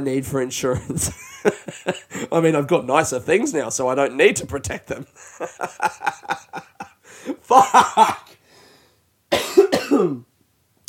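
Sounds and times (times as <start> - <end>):
speech: 0.0 - 6.2, 7.5 - 8.2, 10.0 - 10.3
laughter: 0.8 - 2.3, 5.0 - 8.2
person forcing a throaty cough: 7.5 - 8.4, 9.3 - 10.3.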